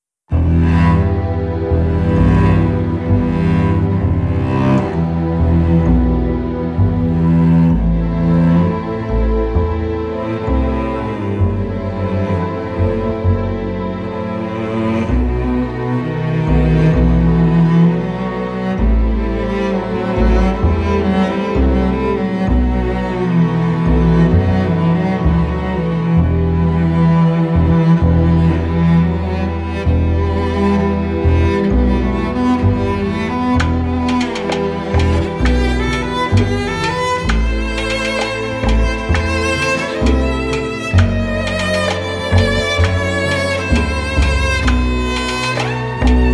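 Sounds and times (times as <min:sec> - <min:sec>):
expressive orchestral music: 0:00.3 - 0:46.3
percussion: 0:33.6 - 0:46.3.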